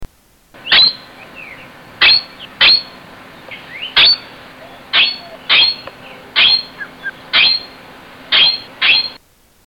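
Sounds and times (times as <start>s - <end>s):
Palawan peacock pheasant: 0.6s - 9.2s.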